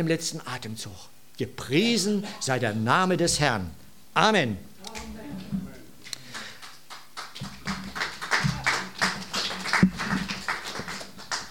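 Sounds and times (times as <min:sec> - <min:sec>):
speech: 0:00.0 - 0:05.1
small crowd applauding: 0:06.2 - 0:11.4.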